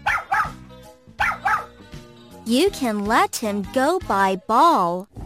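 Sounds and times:
small dog barking sharply: 0.0s - 0.6s, 1.2s - 1.8s
speech: 2.5s - 5.1s.

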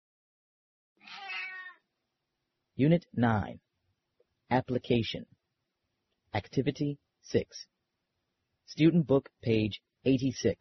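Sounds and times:
cat meowing: 1.0s - 1.8s
speech: 2.8s - 3.6s, 4.5s - 5.4s, 6.3s - 7.7s, 8.7s - 10.5s.

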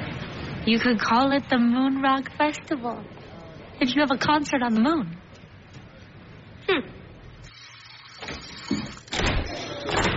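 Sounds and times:
speech: 0.7s - 3.2s, 3.8s - 5.2s, 6.7s - 7.0s
door opening and closing: 8.2s - 10.1s.

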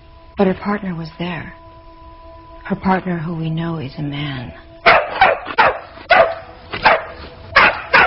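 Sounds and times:
speech: 0.4s - 1.6s, 2.7s - 4.6s
dog barking: 4.8s - 8.0s.

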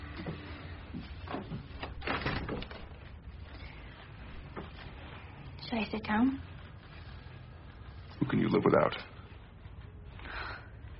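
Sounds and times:
soft knocks and rustling: 0.1s - 5.5s
door closing: 1.3s - 3.0s
speech: 5.7s - 6.5s, 8.3s - 9.1s.

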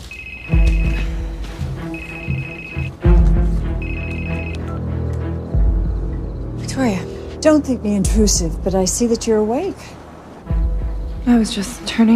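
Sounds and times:
telephone ringing with bright trilling tone: 0.1s - 1.0s, 1.9s - 3.0s, 3.8s - 4.9s
low sustained rumble: 3.0s - 12.1s
speech: 6.8s - 10.0s, 11.2s - 12.1s.

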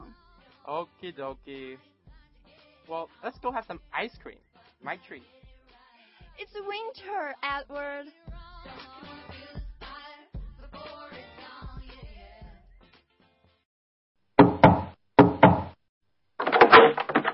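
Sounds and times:
speech: 0.7s - 2.0s, 2.9s - 5.4s, 6.4s - 9.1s
loud knocking on a door: 14.4s - 15.8s.

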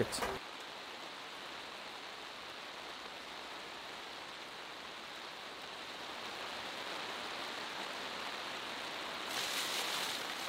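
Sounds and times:
speech: 0.0s - 0.3s
heavy downpour of dense rain: 0.0s - 10.4s.

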